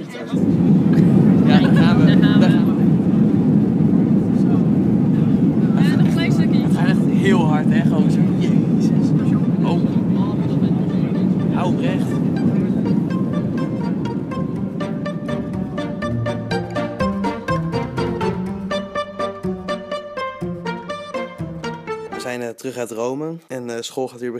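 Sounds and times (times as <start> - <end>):
indistinct voices murmuring in airplane cabin: 0.0 - 16.9
airplane cabin engine and ventilation drone before takeoff: 0.2 - 22.1
speech: 22.7 - 24.3.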